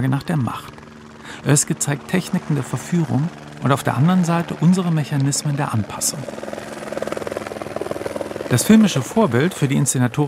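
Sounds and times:
speech: 0:00.0 - 0:00.8, 0:01.4 - 0:06.7, 0:08.5 - 0:10.2
helicopter rotor beating: 0:00.0 - 0:10.2.

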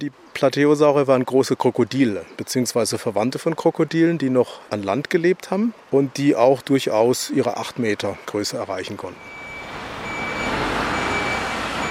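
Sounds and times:
speech: 0:00.0 - 0:09.4
truck engine rumbling at a dinosaur fossil excavation: 0:08.6 - 0:11.8
long faint high-pitched beeps: 0:09.2 - 0:11.8.

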